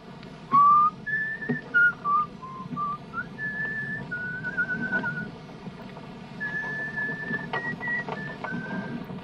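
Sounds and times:
person on board a sailing boat whistling a slow tune: 0.5 - 5.3, 6.4 - 9.0.

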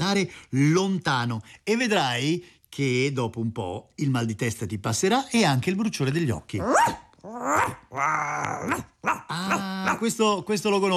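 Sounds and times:
speech: 0.1 - 10.9
pet dog growling and barking: 6.6 - 10.1.

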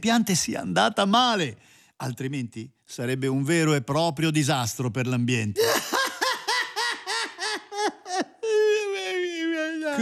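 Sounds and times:
speech: 0.0 - 6.0
person sobbing and wailing: 5.6 - 10.0.

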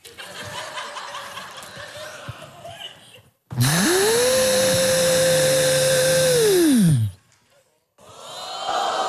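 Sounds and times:
people laughing: 0.0 - 3.3
voice imitating a vacuum cleaner: 3.6 - 7.1.

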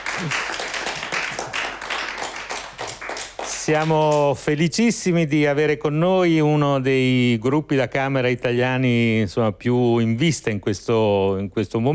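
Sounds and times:
audience applause at a chamber music performance: 0.0 - 4.2
speech: 0.2 - 0.6, 3.7 - 11.9.

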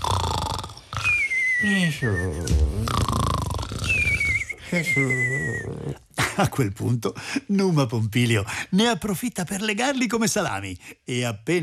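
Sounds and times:
deep snoring from two sleepers after drinking: 0.0 - 6.1
speech: 1.6 - 3.2, 4.7 - 11.6.

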